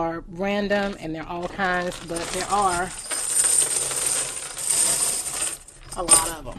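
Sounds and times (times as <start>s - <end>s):
speech: 0.0s - 3.2s, 6.0s - 6.5s
silver half-dollar coins clinking together: 1.6s - 6.4s.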